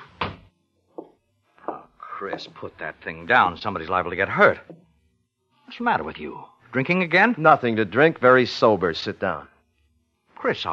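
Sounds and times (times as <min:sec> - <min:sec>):
door shutting with a solid heavy thud: 0:00.0 - 0:00.5
speech: 0:02.2 - 0:04.8, 0:05.7 - 0:09.5, 0:10.4 - 0:10.7.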